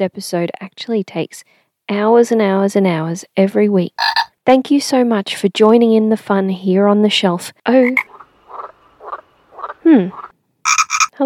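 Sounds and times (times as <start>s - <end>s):
speech: 0.0s - 8.1s, 9.8s - 11.2s
frogs croaking: 4.0s - 4.3s, 7.8s - 11.1s.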